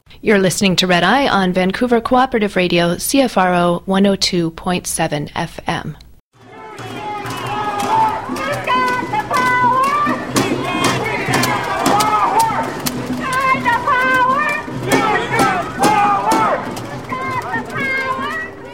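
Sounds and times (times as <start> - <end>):
speech: 0.2 - 6.0
crowd of over 500 hotel workers and union allies chanting and shouting at a rally: 6.4 - 18.7
sharp percussive hits: 6.4 - 18.7.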